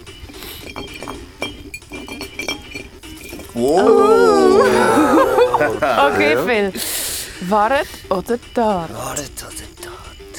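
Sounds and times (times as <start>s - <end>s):
empty glass bottle set down on stone: 0.0s - 3.8s
laughter: 3.6s - 6.8s
speech: 3.6s - 9.6s.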